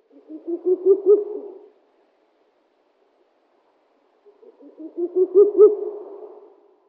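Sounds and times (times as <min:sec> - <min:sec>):
Ural owl Strix uralensis calling: 0:00.0 - 0:01.7, 0:04.2 - 0:06.0.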